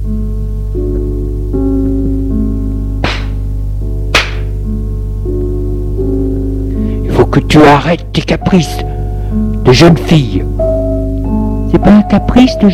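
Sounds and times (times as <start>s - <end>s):
sustained droning music: 0.0s - 12.7s
sharp slaps across the face: 3.0s - 3.4s, 4.1s - 4.6s
speech: 7.3s - 8.9s, 9.6s - 10.5s, 11.7s - 12.7s.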